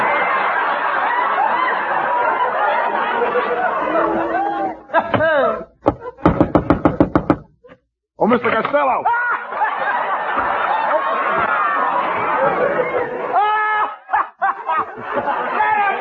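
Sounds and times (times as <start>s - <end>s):
crowd chatter: 0.0s - 6.2s, 9.6s - 13.4s
people laughing: 0.0s - 6.9s, 8.5s - 15.9s
heavy pounding on a door: 5.8s - 7.5s
speech: 8.3s - 9.2s.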